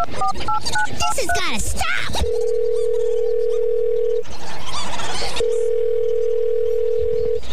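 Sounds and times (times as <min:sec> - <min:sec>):
speech: 0:00.0 - 0:03.0
telephone call ringing out: 0:02.2 - 0:04.2, 0:05.4 - 0:07.4.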